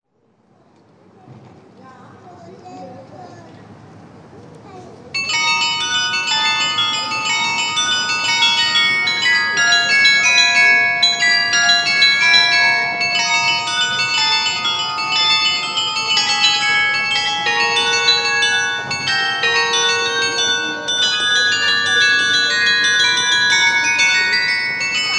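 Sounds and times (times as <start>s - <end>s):
carillon playing a scherzo: 5.2s - 25.1s.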